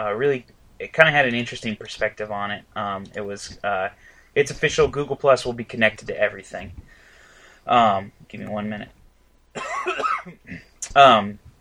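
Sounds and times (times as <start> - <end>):
speech: 0.0 - 7.0, 7.6 - 9.0, 9.6 - 11.4
person coughing with a harsh rasping burst: 9.6 - 10.8.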